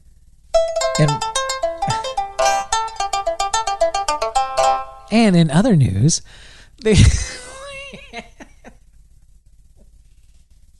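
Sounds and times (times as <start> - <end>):
electronic phone ringtone: 0.6 - 5.1
speech: 1.0 - 1.3, 5.1 - 8.3
laughter: 6.9 - 8.7.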